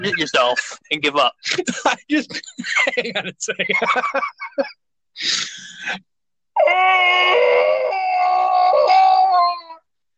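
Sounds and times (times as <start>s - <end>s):
speech: 0.0s - 9.6s
laughter: 1.4s - 4.8s
man screaming: 6.6s - 9.7s.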